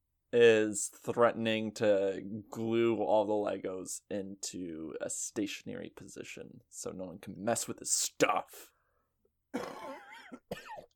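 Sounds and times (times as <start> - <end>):
speech: 0.3 - 8.7, 9.5 - 10.8
person coughing: 9.5 - 10.9
raspy throat clearing: 9.5 - 10.9.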